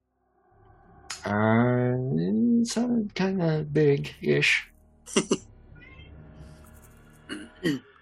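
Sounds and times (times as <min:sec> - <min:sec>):
faint low hum: 0:00.6 - 0:07.8
speech: 0:02.2 - 0:05.5, 0:07.6 - 0:07.9
short sharp cat cries: 0:05.8 - 0:06.1.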